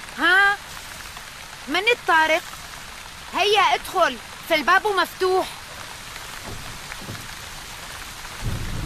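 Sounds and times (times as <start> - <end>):
steady dense rainfall in cold weather: 0.0 - 8.8
speech: 1.7 - 2.6, 3.3 - 5.6
low rumble of thunder: 6.4 - 8.8.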